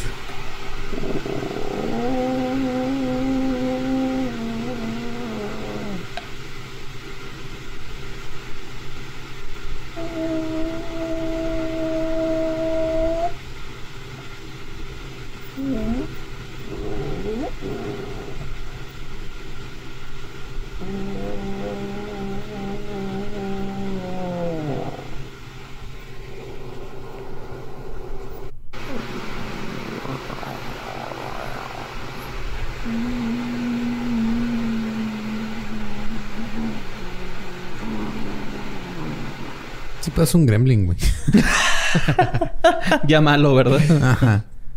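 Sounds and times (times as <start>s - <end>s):
low droning growling calls of alleged Sasquatch outside tent: 0.7s - 6.4s, 9.9s - 13.5s, 15.4s - 40.1s
speech: 40.2s - 44.5s
laughter: 41.0s - 43.1s, 43.7s - 44.4s.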